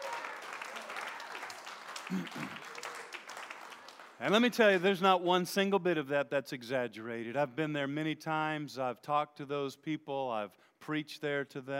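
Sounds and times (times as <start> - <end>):
crowd clapping: 0.0 - 4.8
speech: 2.1 - 2.8, 4.2 - 11.7.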